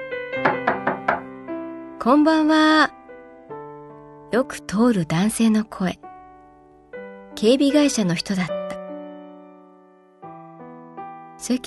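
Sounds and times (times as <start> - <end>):
knocking on a door: 0.4 - 1.4
speech: 2.0 - 3.0, 4.3 - 6.0, 7.4 - 8.6, 11.4 - 11.6.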